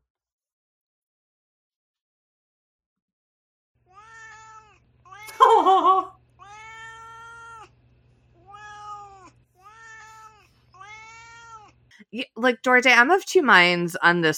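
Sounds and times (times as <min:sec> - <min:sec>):
cat meowing: 0:03.9 - 0:05.4, 0:06.4 - 0:07.7, 0:08.4 - 0:11.8
laughter: 0:05.3 - 0:06.1
speech: 0:12.1 - 0:14.3.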